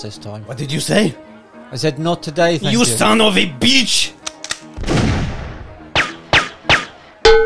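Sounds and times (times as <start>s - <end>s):
speech: 0.0s - 4.2s
sharp gunshots: 4.2s - 7.0s
loud booming blast: 4.8s - 5.6s.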